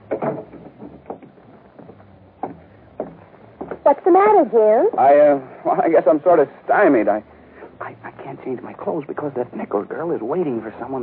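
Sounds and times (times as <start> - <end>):
door pushed shut with solid thump: 0.0 - 3.8
light knocks and clicks: 0.0 - 3.8
speech: 3.9 - 7.3, 8.4 - 11.0.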